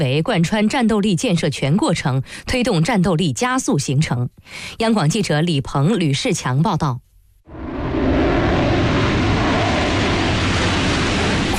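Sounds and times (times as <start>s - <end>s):
speech: 0.0s - 7.6s
Su-35 fighter jets flying over an air force airfield at night: 7.5s - 11.5s.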